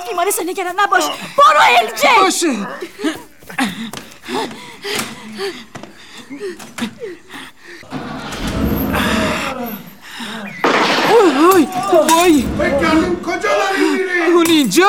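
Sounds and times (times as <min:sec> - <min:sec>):
speech: 0:00.1 - 0:05.8, 0:06.4 - 0:08.2, 0:11.4 - 0:14.8
breathy sounds: 0:02.0 - 0:10.6
tense voices: 0:07.8 - 0:14.3.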